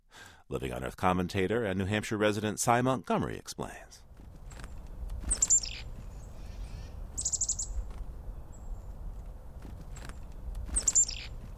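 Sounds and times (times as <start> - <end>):
speech: 0.5 - 4.0
low steady outdoor rumble: 3.6 - 11.5
chickadee scolding chip-and-buzz winter calls: 5.2 - 7.9, 10.7 - 11.4.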